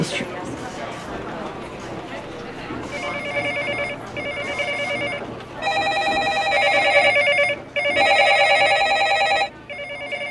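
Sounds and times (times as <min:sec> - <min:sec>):
faint murmur: 0:00.0 - 0:10.2
office telephone ringing: 0:02.9 - 0:10.2.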